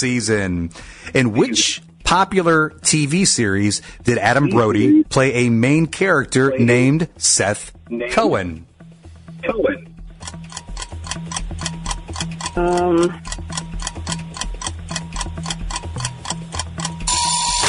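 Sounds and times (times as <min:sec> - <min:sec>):
speech: 0:00.0 - 0:08.7, 0:09.4 - 0:10.4, 0:12.6 - 0:13.5
low pulsing backing track: 0:00.0 - 0:17.5
quiz countdown timer ticking: 0:01.0 - 0:17.6.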